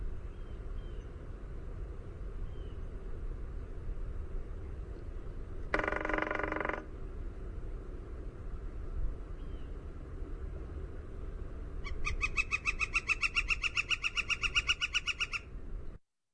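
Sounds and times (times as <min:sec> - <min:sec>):
low steady rumble: 0:00.0 - 0:16.0
Northern flicker drumming: 0:05.7 - 0:06.9, 0:12.1 - 0:15.4.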